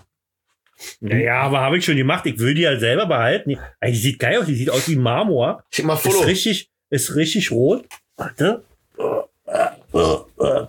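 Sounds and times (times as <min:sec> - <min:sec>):
speech: 0:01.0 - 0:10.6
short throaty burps: 0:09.0 - 0:10.6.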